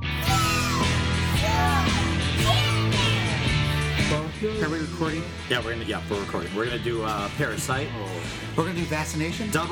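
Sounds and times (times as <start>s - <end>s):
children shrieking and yelling: 0.2s - 3.9s
steady music: 0.2s - 9.7s
speech: 4.4s - 9.7s.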